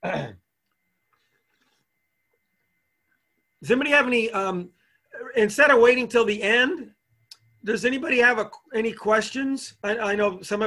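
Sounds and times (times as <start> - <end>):
person clearing a raspy throat: 0.0 - 0.4
speech: 3.6 - 7.0, 7.6 - 10.6.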